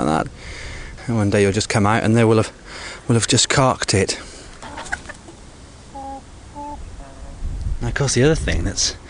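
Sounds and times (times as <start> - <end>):
speech: 0.1 - 4.4, 7.9 - 9.0
hens clucking: 4.3 - 7.4.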